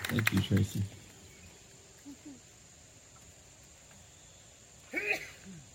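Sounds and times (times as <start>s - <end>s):
speech: 0.1s - 1.0s
person sneezing: 4.9s - 5.7s.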